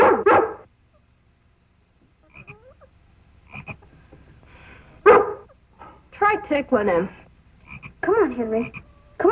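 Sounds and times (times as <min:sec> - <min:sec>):
dog barking loudly to make a frog jump: 0:00.0 - 0:00.7, 0:05.0 - 0:05.6
faint croaking and chirping: 0:00.0 - 0:09.2
speech: 0:06.3 - 0:07.2, 0:08.1 - 0:09.2.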